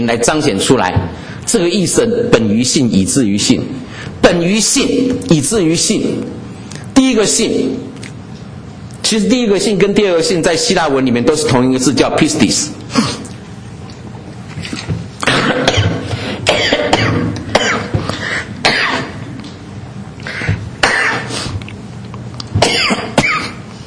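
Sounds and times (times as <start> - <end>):
speech: 0.0 - 8.0, 9.1 - 13.3
person coughing harshly after choking on a drink: 15.2 - 19.2, 20.3 - 21.4, 22.6 - 23.7.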